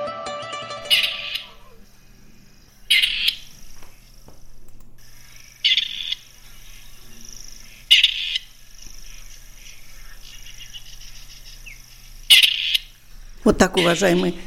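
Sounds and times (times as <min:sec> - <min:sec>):
insects chirring in an open field: 0:00.3 - 0:14.4
grey partridge calling: 0:00.7 - 0:01.9, 0:02.9 - 0:03.6, 0:05.1 - 0:14.4
speech: 0:13.5 - 0:14.4.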